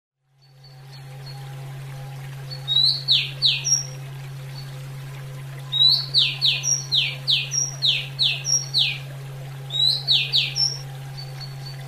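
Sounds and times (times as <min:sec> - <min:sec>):
low hum: 0:00.2 - 0:11.8
female Oriental magpie-robin whistled song: 0:02.6 - 0:04.0, 0:05.7 - 0:09.1, 0:09.7 - 0:11.8.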